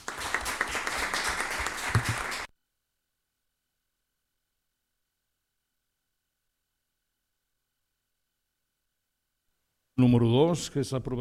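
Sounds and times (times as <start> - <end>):
town council meeting attendees applauding a new councillor: 0.0 - 2.5
speech: 10.0 - 11.1.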